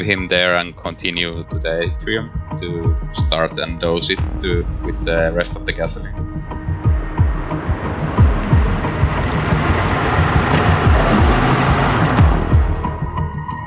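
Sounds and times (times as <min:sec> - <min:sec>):
speech: 0:00.0 - 0:06.3
approaching vehicle engine rumble: 0:04.2 - 0:13.2
low thumps: 0:04.2 - 0:13.2
road noise of approaching vehicle: 0:04.4 - 0:13.2.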